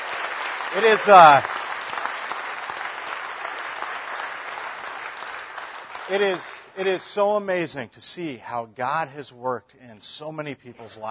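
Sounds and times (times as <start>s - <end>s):
church congregation applauding: 0.0s - 7.4s
speech: 0.7s - 1.5s, 6.1s - 11.0s.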